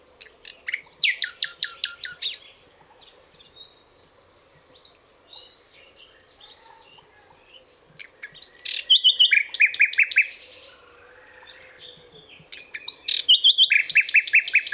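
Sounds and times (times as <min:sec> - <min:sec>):
nightingale singing: 0:00.2 - 0:02.6, 0:08.1 - 0:14.7.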